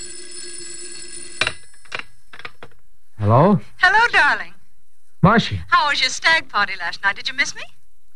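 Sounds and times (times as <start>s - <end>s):
shrill telephone bell ringing: 0.0s - 2.3s
speech: 3.2s - 4.5s, 5.2s - 7.8s.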